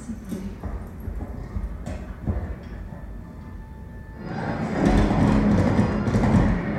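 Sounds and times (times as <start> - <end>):
horse hooves clip-clopping: 0.4 - 3.7, 4.9 - 6.7.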